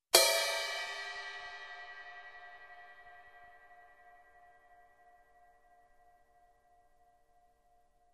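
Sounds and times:
single ride cymbal hit: 0.1 - 3.8.

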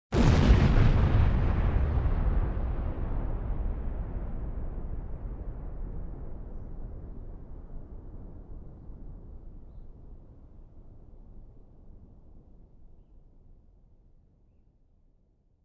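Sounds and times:
bomb blast: 0.1 - 8.1.

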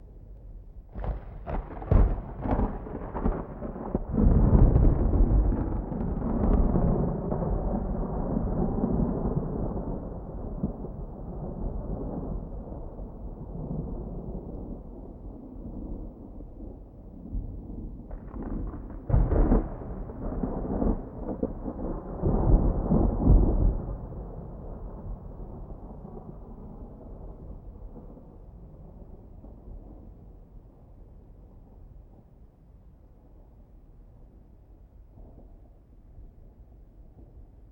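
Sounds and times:
distant thunder: 0.9 - 16.4, 17.3 - 30.5.

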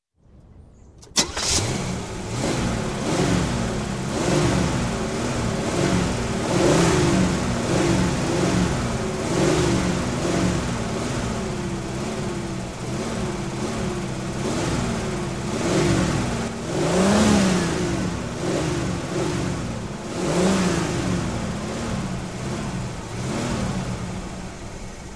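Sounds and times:
car engine ignition and running: 0.4 - 25.1.

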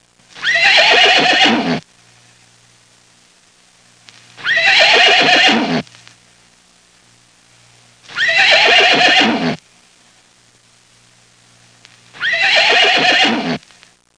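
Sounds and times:
farm horse neighing: 0.4 - 1.8, 4.4 - 5.8, 8.2 - 9.6, 12.2 - 13.6.

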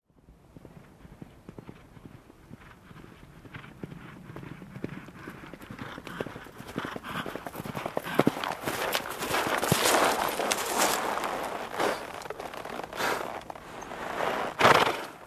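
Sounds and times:
horse gaits approaching: 0.2 - 15.2
horse heavy breathing: 5.0 - 15.2.

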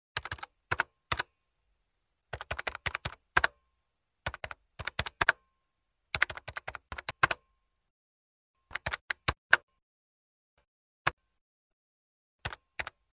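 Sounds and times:
typing on keyboard: 0.2 - 1.3, 2.3 - 3.6, 4.3 - 5.4, 6.1 - 7.4, 8.7 - 9.7, 12.4 - 13.1.

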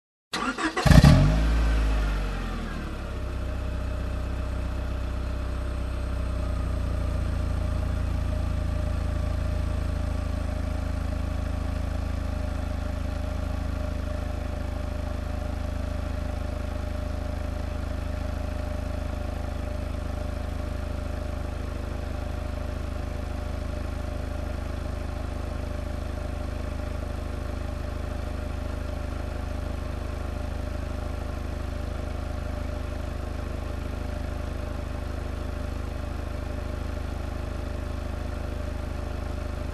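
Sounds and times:
car engine ignition: 0.3 - 16.5
car engine running idle: 0.4 - 39.7.

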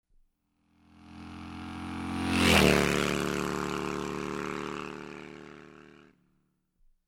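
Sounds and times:
speedy motorcycle passing by: 0.7 - 6.2.

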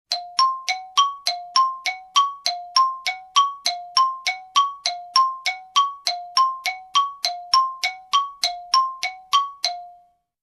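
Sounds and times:
xylophone suspicious melody: 0.1 - 10.2.

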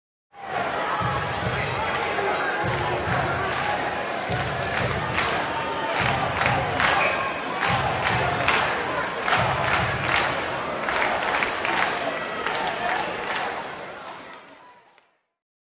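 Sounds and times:
crowd cheering: 0.4 - 15.1
crowd stomping: 2.6 - 11.8.

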